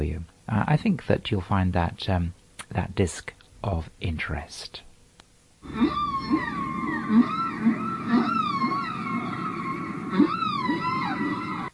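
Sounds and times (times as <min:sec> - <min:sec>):
speech: 0:00.0 - 0:04.9, 0:05.6 - 0:06.5
soft pulsing blips: 0:05.6 - 0:11.7
warbling dolphin-like whistles used as item separator: 0:05.6 - 0:11.7.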